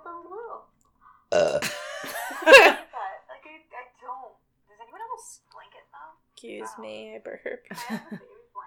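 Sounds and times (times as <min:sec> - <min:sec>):
long loud rumbling burp: 0:01.3 - 0:01.8
speech: 0:01.3 - 0:01.8, 0:02.4 - 0:02.8, 0:06.6 - 0:08.4
laughter: 0:01.6 - 0:02.9, 0:07.7 - 0:08.2.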